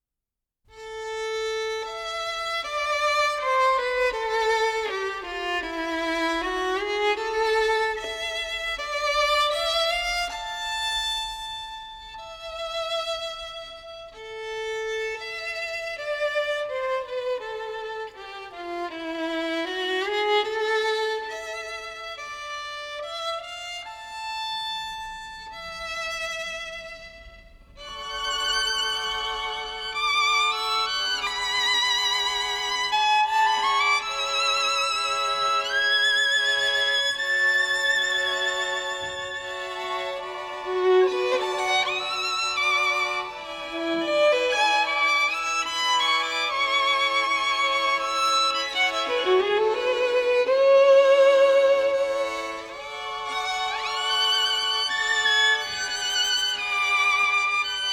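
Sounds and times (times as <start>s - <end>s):
nostalgic violins: 0.7s - 57.9s.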